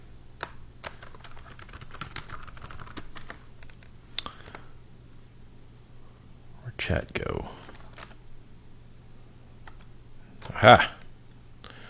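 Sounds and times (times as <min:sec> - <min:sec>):
typing on a computer keyboard: 0:00.4 - 0:04.7, 0:07.5 - 0:08.2, 0:09.6 - 0:11.1
speech: 0:06.9 - 0:07.6, 0:10.6 - 0:11.0.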